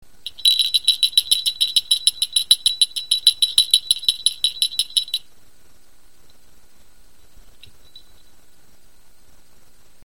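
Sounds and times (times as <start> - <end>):
flower bell ringing: 0.3 - 5.3, 7.6 - 8.3.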